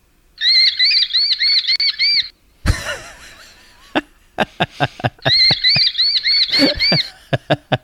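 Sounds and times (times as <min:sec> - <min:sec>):
baby falcon giving high-pitched squealing calls: 0:00.4 - 0:02.3, 0:05.2 - 0:07.2
laughter: 0:02.7 - 0:07.8.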